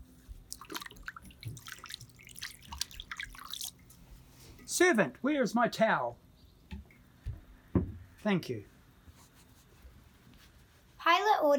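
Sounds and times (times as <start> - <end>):
hands washed under running water splashing on skin and basin: 0.4 - 4.0
speech: 4.8 - 6.2, 8.2 - 8.7.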